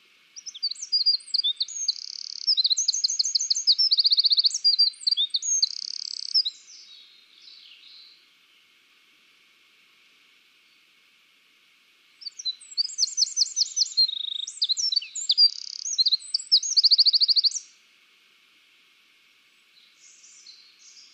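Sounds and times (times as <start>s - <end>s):
Eurasian wren Troglodytes troglodytes song: 0.0s - 8.3s, 12.1s - 17.8s, 19.3s - 21.1s.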